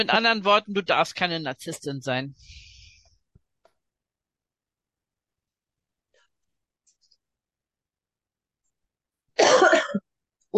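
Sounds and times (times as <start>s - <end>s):
speech: 0.0s - 2.6s, 9.9s - 10.5s
person coughing: 9.4s - 10.0s.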